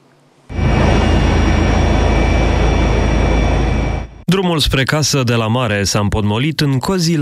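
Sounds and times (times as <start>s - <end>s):
helicopter engine and rotor roar: 0.5s - 4.2s
speech: 4.3s - 7.2s.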